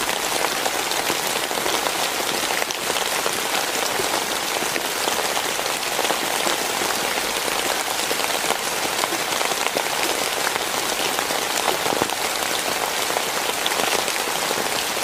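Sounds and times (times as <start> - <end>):
rain pattering on a surface: 0.0 - 15.0.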